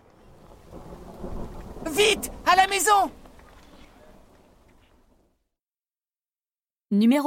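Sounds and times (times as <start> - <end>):
faint windy hiss: 0.0 - 5.3
low rolling rumble of thunder: 0.0 - 5.4
speech: 1.9 - 3.2, 6.9 - 7.2.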